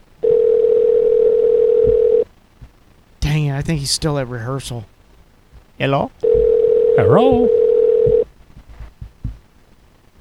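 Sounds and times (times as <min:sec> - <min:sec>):
telephone dial tone while calling: 0:00.2 - 0:02.2, 0:06.2 - 0:08.2
speech: 0:03.7 - 0:04.9, 0:05.8 - 0:06.2, 0:07.0 - 0:07.6
faint low thump: 0:06.3 - 0:06.5, 0:07.3 - 0:09.4.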